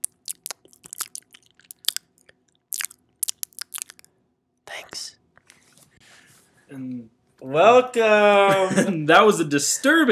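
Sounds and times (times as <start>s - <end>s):
ASMR mouth smacking of lips and tongue: 0.0s - 4.1s
speech: 4.8s - 5.2s, 6.7s - 10.1s.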